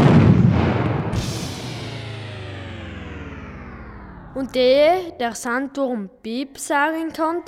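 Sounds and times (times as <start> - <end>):
small explosion: 0.0 - 4.4
speech: 4.4 - 7.4.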